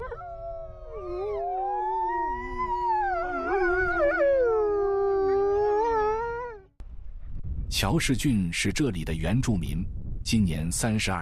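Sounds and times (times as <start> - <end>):
several wolves howling in chorus: 0.0 - 6.7
speech: 7.8 - 11.1.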